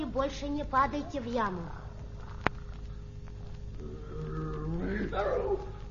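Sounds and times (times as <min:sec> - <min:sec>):
speech: 0:00.2 - 0:01.8, 0:05.1 - 0:05.9
tigress roaring: 0:03.8 - 0:05.7.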